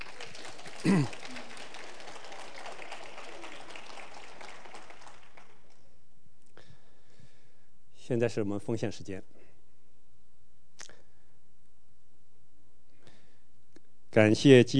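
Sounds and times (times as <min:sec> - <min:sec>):
congregation applauding with dense steady clapping: 0:00.0 - 0:05.9
speech: 0:00.8 - 0:01.2, 0:08.1 - 0:09.4, 0:14.1 - 0:14.7.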